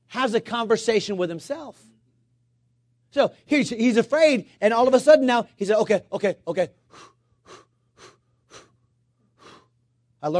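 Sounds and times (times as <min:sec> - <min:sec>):
faint steady hum: 0:00.0 - 0:10.3
speech: 0:00.1 - 0:01.9, 0:03.1 - 0:07.6
person imitating cold-water shock with sharp gasping breaths: 0:06.8 - 0:09.8.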